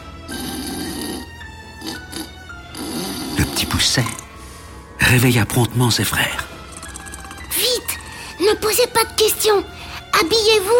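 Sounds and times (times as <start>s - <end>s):
loud raspy snoring of an ogre in bed in a house: 0.2s - 4.3s
speech: 3.8s - 4.2s, 5.1s - 6.5s, 8.5s - 10.7s.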